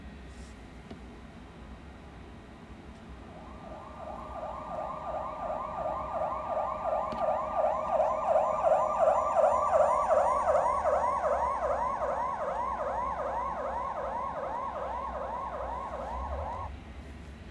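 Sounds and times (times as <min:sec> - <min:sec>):
passing siren yelping with Doppler pitch shift: 0:03.2 - 0:16.7.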